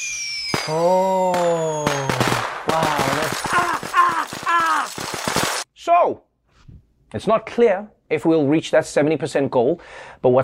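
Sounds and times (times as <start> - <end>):
steady whistling humming tone: 0.0 - 2.2
sharp fireworks bangs: 0.0 - 5.6
speech: 0.7 - 1.4, 5.9 - 6.3, 7.1 - 10.4.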